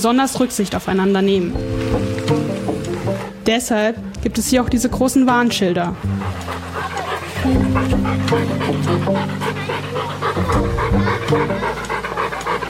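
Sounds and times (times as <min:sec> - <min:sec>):
speech: 0:00.0 - 0:02.4, 0:03.4 - 0:09.8, 0:10.5 - 0:11.8
dog panting at a dog meadow in a park: 0:02.4 - 0:03.5, 0:04.8 - 0:12.6.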